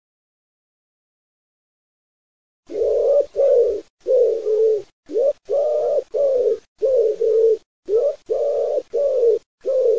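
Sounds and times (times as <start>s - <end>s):
wood pigeon cooing: 2.7s - 9.9s.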